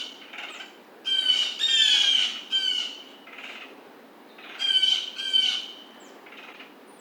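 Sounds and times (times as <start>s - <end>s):
blue jay giving harsh nasal jay calls: 0.0s - 3.7s, 4.4s - 5.8s.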